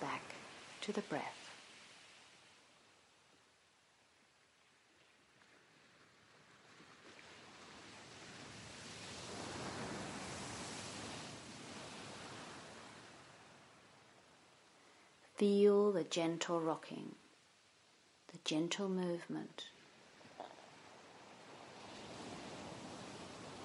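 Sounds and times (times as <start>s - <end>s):
ocean surf washing onto the shore: 0.0s - 3.1s, 5.3s - 15.2s, 19.7s - 23.6s
speech: 0.8s - 1.4s, 15.4s - 17.2s, 18.4s - 19.8s.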